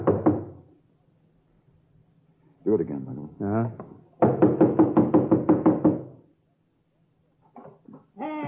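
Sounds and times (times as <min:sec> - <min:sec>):
police knocking rapidly and forcefully on a door: 0:00.0 - 0:00.6, 0:03.8 - 0:06.2
speech: 0:02.7 - 0:04.6.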